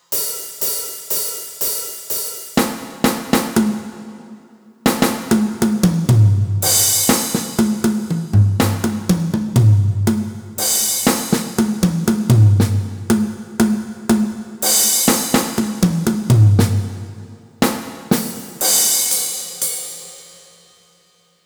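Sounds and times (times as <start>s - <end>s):
hand drums: 4.9s - 19.0s.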